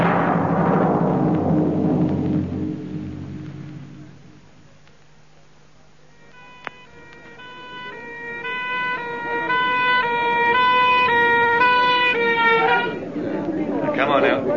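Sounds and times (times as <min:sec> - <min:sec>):
faint road rumble: 0:00.0 - 0:14.5
ambulance siren alternating between two tones: 0:06.1 - 0:13.1.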